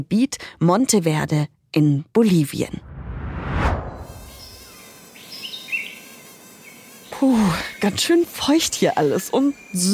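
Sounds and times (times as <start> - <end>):
speech: 0.0 - 2.9, 7.2 - 9.9
whooshing rush: 2.7 - 4.3
mosquitoes whining in humid rainforest in the Monteverde area of Bolivia: 4.1 - 9.9.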